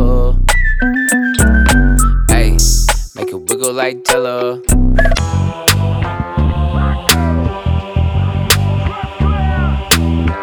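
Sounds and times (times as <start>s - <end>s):
thumping music beat with sharp percussive hits: 0.0s - 6.3s, 7.1s - 7.6s, 8.5s - 10.4s
sustained high whistle tone: 0.5s - 3.1s, 5.0s - 5.3s
speech: 3.9s - 5.2s.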